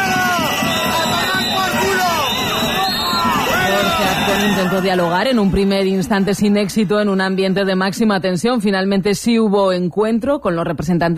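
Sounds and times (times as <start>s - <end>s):
protesters shouting and booing the president of Aragón at an event in Huesca Spain: 0.0s - 8.0s
speech: 4.4s - 11.1s.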